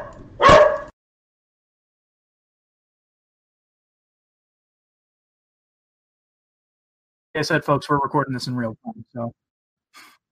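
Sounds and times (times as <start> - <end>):
dog barking: 0.0 - 0.9
speech: 7.4 - 9.4.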